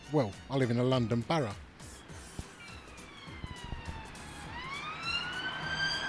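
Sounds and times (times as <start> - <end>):
steady city traffic on a London street: 0.0 - 6.0
speech: 0.1 - 1.7
passing police car siren wailing on a London street: 2.5 - 6.0.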